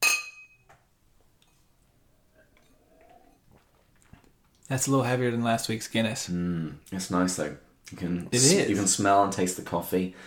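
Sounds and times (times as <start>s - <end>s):
glasses of porter clinking in a toast: 0.0s - 0.7s, 2.6s - 3.6s
speech: 4.7s - 10.2s.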